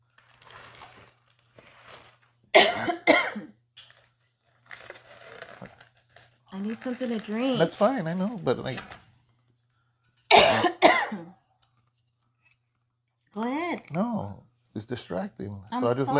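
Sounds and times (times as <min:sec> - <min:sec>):
soft rustling and faint crinkling: 0:00.0 - 0:02.5, 0:03.8 - 0:09.5
person coughing: 0:02.6 - 0:03.6, 0:10.3 - 0:11.4
speech: 0:06.6 - 0:09.0, 0:14.8 - 0:16.1.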